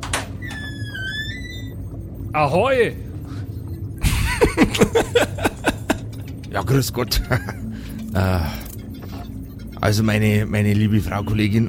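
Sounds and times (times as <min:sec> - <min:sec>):
door creaking open: 0:00.0 - 0:02.1
speech: 0:02.3 - 0:03.0, 0:04.4 - 0:05.5, 0:06.5 - 0:08.7, 0:09.8 - 0:11.6
laughter: 0:04.0 - 0:06.3, 0:07.0 - 0:07.7.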